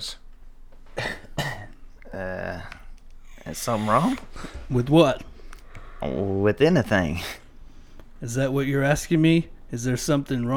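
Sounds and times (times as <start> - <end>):
person coughing: 1.0 - 1.8
speech: 3.5 - 5.3, 6.0 - 7.4, 8.2 - 10.5.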